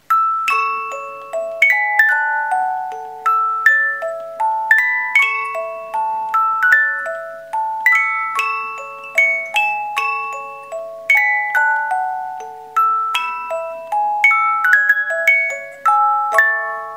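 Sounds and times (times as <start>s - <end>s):
18-note wooden music box melody: 0.0s - 16.9s.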